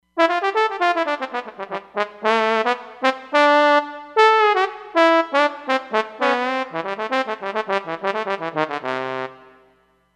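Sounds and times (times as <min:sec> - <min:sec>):
solo trombone: 0:00.2 - 0:09.7.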